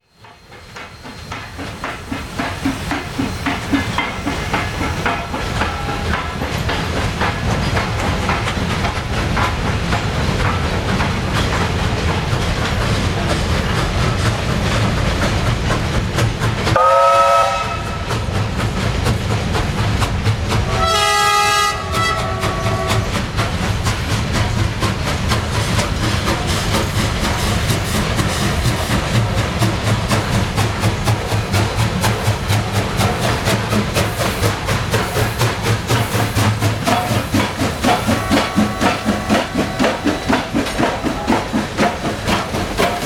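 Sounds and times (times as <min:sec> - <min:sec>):
steam locomotives: 0:00.0 - 0:43.0.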